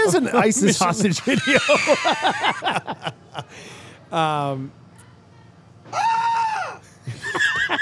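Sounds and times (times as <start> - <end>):
laughter: 0.0 - 3.6, 7.0 - 7.8
speech: 0.1 - 4.8
children screaming while bowling: 5.9 - 6.8.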